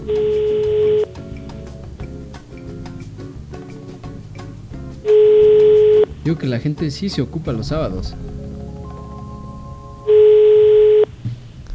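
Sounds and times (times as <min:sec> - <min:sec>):
telephone ringback tone on an unanswered call: 0:00.0 - 0:01.1, 0:05.1 - 0:06.1, 0:08.8 - 0:11.1
speech: 0:06.3 - 0:08.4.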